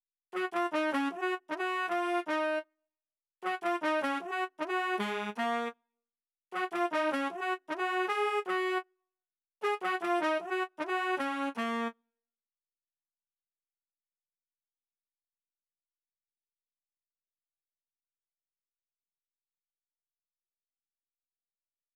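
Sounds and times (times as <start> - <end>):
classic trumpet melody loop at 155 BPM in D sharp minor: 0.4 - 2.7, 3.4 - 5.8, 6.5 - 8.9, 9.6 - 12.0.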